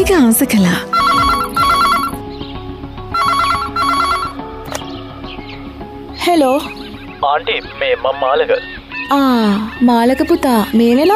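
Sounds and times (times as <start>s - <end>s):
speech: 0.0s - 1.0s, 6.3s - 11.1s
house telephone ringing with an electronic trilling tone: 0.9s - 2.2s, 3.2s - 4.5s.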